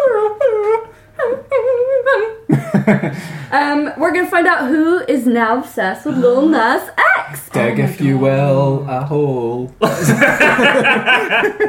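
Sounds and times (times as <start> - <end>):
dog whimpering and crying in high wavering whines: 0.0 - 2.4
laughter: 2.5 - 3.5, 9.8 - 11.6
speech: 2.9 - 11.6.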